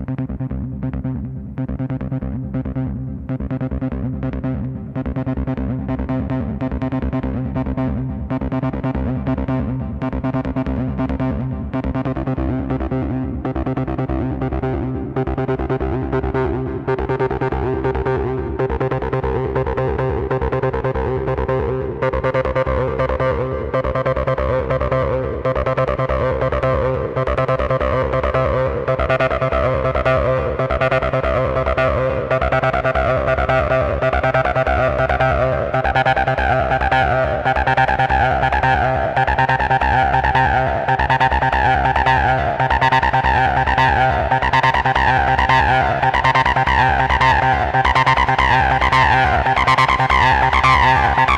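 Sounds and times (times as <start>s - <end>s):
Yamaha AN1x synthesizer playing TB-303 style acid line: 0.1s - 51.3s.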